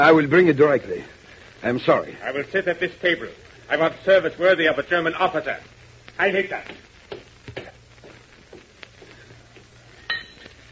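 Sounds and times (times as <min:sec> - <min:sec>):
speech: 0:00.0 - 0:07.7
low steady hum: 0:00.0 - 0:10.6
dropped drinking glass clinking: 0:10.0 - 0:10.6
dropped drinking glass ringing chime: 0:10.0 - 0:10.6.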